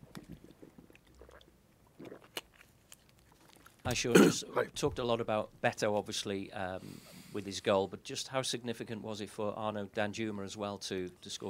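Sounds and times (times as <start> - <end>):
person swallowing softly: 0.1 - 2.5
person sipping water: 0.1 - 3.8
wet mouth clicks: 0.1 - 3.8
speech: 3.9 - 11.4.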